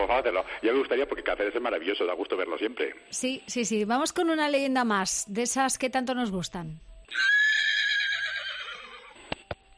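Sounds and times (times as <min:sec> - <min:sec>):
speech: 0:00.0 - 0:07.5
horse whinnying: 0:07.1 - 0:09.3.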